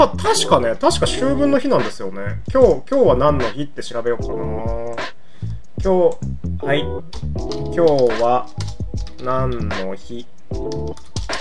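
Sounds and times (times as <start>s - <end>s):
speech: 0.0s - 5.0s, 5.8s - 11.4s
fast typing on a computer keyboard: 7.1s - 11.4s.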